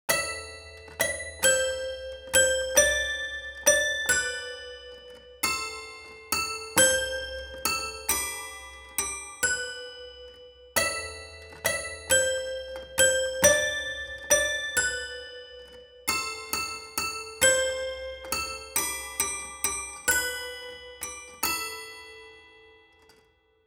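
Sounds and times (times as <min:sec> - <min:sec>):
toy piano: 0:00.1 - 0:23.3.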